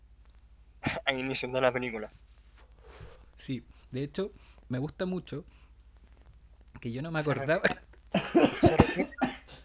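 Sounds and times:
speech: 0:01.1 - 0:02.3, 0:03.4 - 0:05.6, 0:06.8 - 0:07.8, 0:08.6 - 0:09.2
laughter: 0:08.2 - 0:09.2
person coughing in rough bursts: 0:08.2 - 0:09.6.

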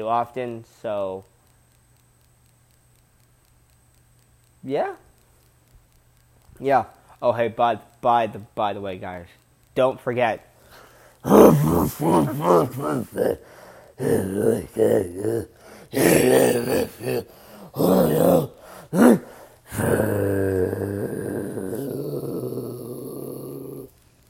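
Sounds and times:
speech: 0:00.0 - 0:01.3, 0:04.6 - 0:05.1, 0:06.6 - 0:10.5, 0:11.2 - 0:21.0
voice imitating death metal guttural growl vocals: 0:11.2 - 0:23.9.

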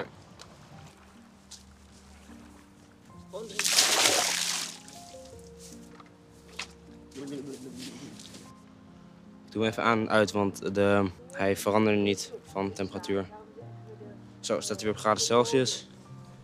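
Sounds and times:
standing water poured out of a container to refresh it: 0:03.5 - 0:05.1
speech: 0:09.6 - 0:13.4, 0:14.5 - 0:15.9.

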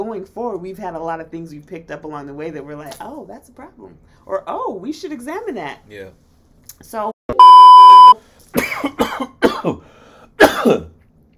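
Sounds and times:
speech: 0:00.0 - 0:07.4, 0:09.6 - 0:09.9, 0:10.6 - 0:10.9
short electronic beep: 0:07.3 - 0:08.2
loud fit of harsh coughing: 0:08.6 - 0:10.9.

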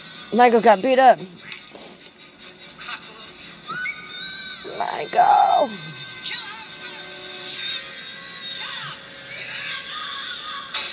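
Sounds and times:
speech: 0:00.3 - 0:01.5, 0:04.8 - 0:06.0
boy screaming in high-pitched wails: 0:03.8 - 0:05.9.

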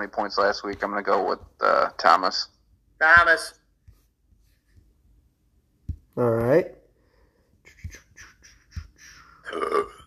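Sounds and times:
speech: 0:00.0 - 0:03.6, 0:06.2 - 0:06.8, 0:09.5 - 0:10.0
softer breathy throat noises: 0:07.6 - 0:10.0
loud burp ending in a rough drawn-out belch: 0:09.4 - 0:10.0.

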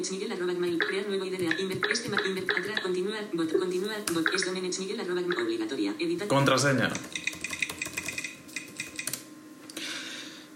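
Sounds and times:
speech: 0:00.0 - 0:07.2
typing on a Mac computer keyboard: 0:00.6 - 0:02.9, 0:04.1 - 0:04.6, 0:06.8 - 0:09.3.

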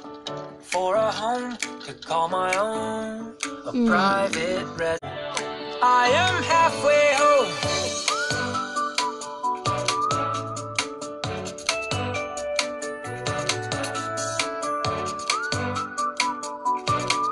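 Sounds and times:
upbeat musical backing with steady drum beat and bass: 0:00.0 - 0:17.3
speech: 0:00.6 - 0:05.1, 0:05.8 - 0:07.7
light whistled melody with sliding notes: 0:07.6 - 0:11.1, 0:12.2 - 0:17.3.

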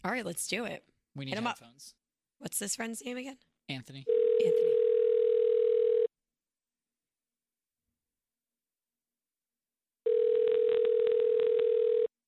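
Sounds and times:
speech: 0:00.0 - 0:04.8
outgoing phone ringback tone: 0:04.1 - 0:06.1, 0:10.1 - 0:12.1.

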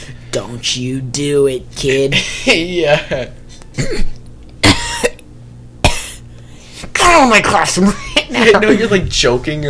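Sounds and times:
speech: 0:00.4 - 0:04.2, 0:07.2 - 0:09.6
person coughing: 0:03.7 - 0:05.2, 0:05.8 - 0:06.3.

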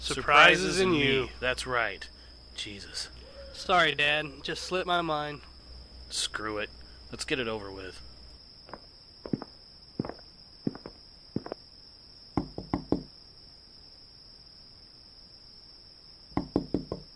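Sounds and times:
speech: 0:00.1 - 0:05.5, 0:06.1 - 0:08.1
spaced thumps: 0:08.7 - 0:11.6, 0:12.4 - 0:13.1
firm knocks on the door of a home: 0:12.4 - 0:13.1, 0:16.4 - 0:17.1.

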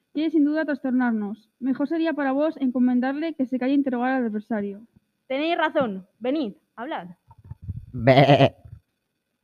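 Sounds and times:
speech: 0:00.2 - 0:07.2, 0:07.9 - 0:08.6
man imitating a sheep's bleat: 0:07.9 - 0:08.8.

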